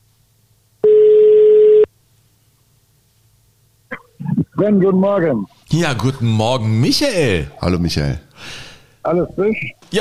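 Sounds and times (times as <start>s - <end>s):
telephone ringback tone while a call connects: 0.8s - 1.9s
speech: 4.6s - 10.0s.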